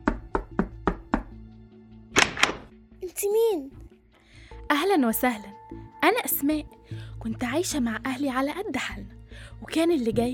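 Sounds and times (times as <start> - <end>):
knocking on a wooden door: 0.0 - 1.4
speech: 3.2 - 3.8, 4.7 - 10.3.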